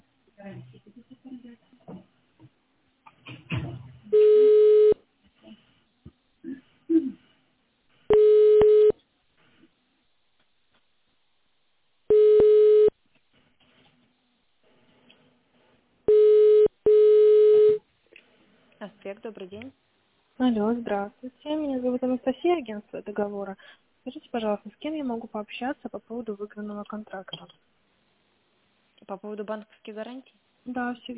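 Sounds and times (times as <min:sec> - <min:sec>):
steady single-pitch telephone tones on an automated phone line: 0:04.1 - 0:05.0, 0:08.1 - 0:09.0, 0:12.1 - 0:12.9, 0:16.1 - 0:17.8
speech: 0:19.0 - 0:27.6, 0:29.1 - 0:31.1.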